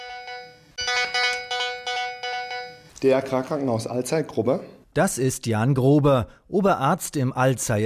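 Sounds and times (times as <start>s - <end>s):
hospital shock-room emergency mobile phone ringing in Alzey, Germany: 0.0s - 3.0s
speech: 3.0s - 7.8s.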